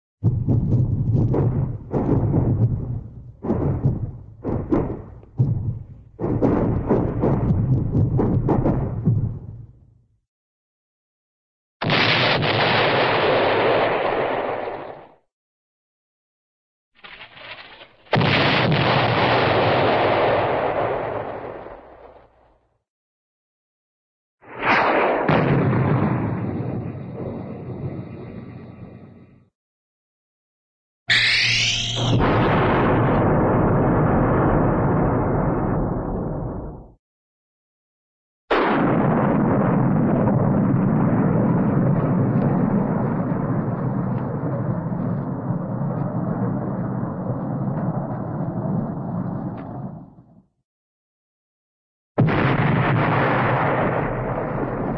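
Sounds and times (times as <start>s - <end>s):
distant cartoon artillery explosions: 0.2s - 10.0s, 11.8s - 15.3s, 17.1s - 22.6s, 24.4s - 29.5s, 32.0s - 37.0s, 38.5s - 50.4s, 52.2s - 54.9s.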